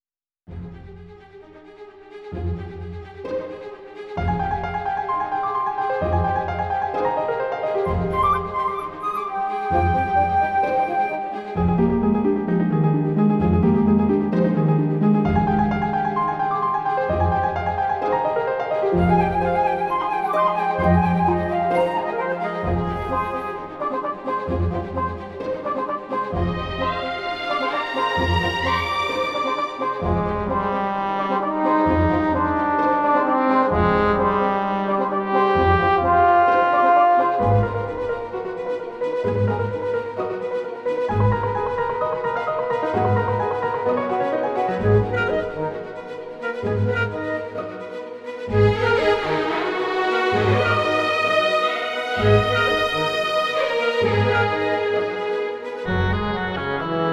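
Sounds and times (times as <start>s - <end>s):
background music: 0.5s - 57.1s.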